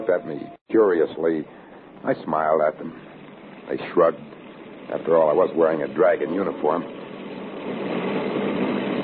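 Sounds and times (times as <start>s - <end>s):
speech: 0.1s - 7.0s, 7.7s - 8.2s
motorcycle engines roaring: 3.1s - 9.0s.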